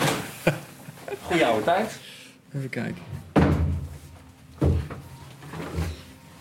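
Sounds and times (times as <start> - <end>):
laughter: 0.1 - 1.7
speech: 0.4 - 0.6, 1.3 - 3.2
wooden changing cubicle door pushed shut knocking into its frame: 3.3 - 3.9.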